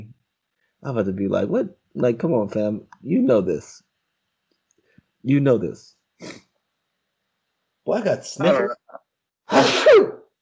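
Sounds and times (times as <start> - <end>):
speech: 0.8 - 3.9, 5.2 - 6.4, 7.9 - 10.1
person sneezing: 6.2 - 6.4, 8.4 - 8.7, 9.5 - 10.3.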